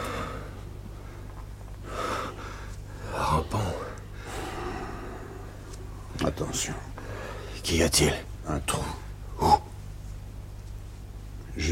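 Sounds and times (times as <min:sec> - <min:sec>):
slow heavy breathing of someone stifling in heat: 0:00.0 - 0:06.0, 0:06.9 - 0:07.6
low steady hum: 0:00.0 - 0:11.7
speech: 0:06.4 - 0:06.9, 0:07.6 - 0:08.9.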